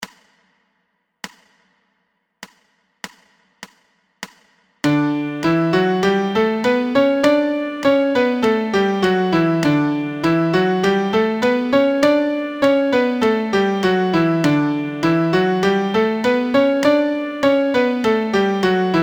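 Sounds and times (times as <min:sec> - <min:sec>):
MIDI D major scale: 0:04.9 - 0:19.0.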